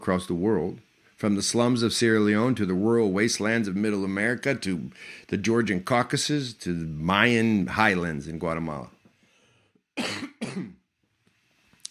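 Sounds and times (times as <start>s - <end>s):
speech: 0.0s - 9.0s
quiet breathing: 4.9s - 5.4s, 9.1s - 9.9s
person coughing: 10.0s - 10.8s.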